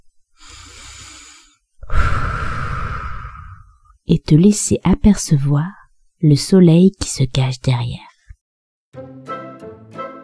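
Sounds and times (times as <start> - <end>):
person blowing air: 0.4 - 3.9
speech: 4.1 - 8.1.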